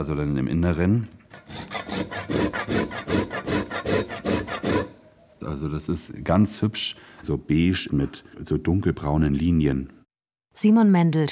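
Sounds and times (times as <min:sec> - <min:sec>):
speech: 0:00.0 - 0:01.2, 0:05.5 - 0:10.0, 0:10.6 - 0:11.3
whole nutmeg being grated on a grater at a spice shop counter: 0:01.4 - 0:05.0.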